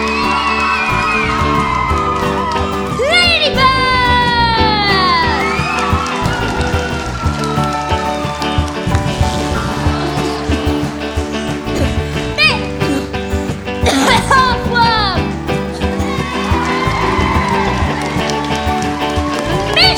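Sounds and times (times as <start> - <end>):
whoops and excited shouts: 0.0 - 10.6, 16.0 - 19.9
large crowd of New York citizens cheering in welcome: 0.0 - 19.9.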